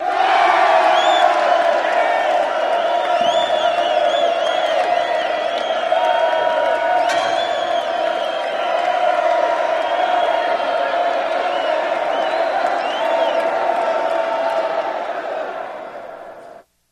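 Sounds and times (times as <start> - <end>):
crowd yelling and cheering in a big arena: 0.0 - 16.6.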